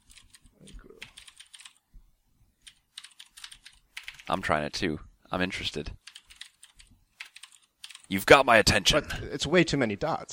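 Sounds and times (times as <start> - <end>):
typing on a computer keyboard: 0.0 - 1.8, 2.6 - 4.3, 6.0 - 8.1
speech: 4.3 - 6.0, 8.1 - 10.3.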